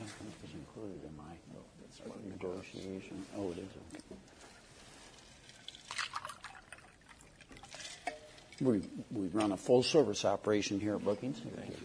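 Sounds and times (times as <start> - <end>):
speech: 0.8 - 4.6, 8.6 - 11.8
water pouring into a glass: 5.4 - 8.6
small water drips: 5.4 - 9.0.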